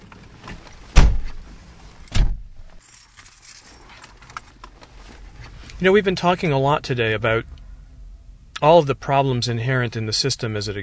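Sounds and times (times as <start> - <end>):
car door thumps: 0.9 - 1.5, 2.1 - 2.6
speech: 5.8 - 7.6, 8.6 - 10.8.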